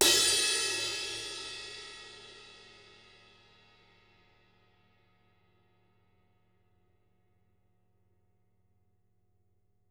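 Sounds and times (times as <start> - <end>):
mid crash cymbal from drum kit: 0.0 - 4.0.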